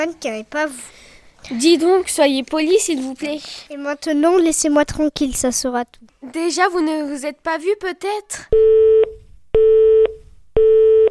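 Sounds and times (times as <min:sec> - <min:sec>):
speech: 0:00.0 - 0:09.0
telephone busy signal after a hang-up: 0:08.6 - 0:11.1.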